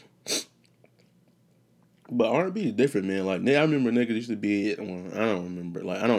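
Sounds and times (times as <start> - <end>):
person sniffling after a sneeze: 0.0 - 0.6
speech: 2.1 - 6.1.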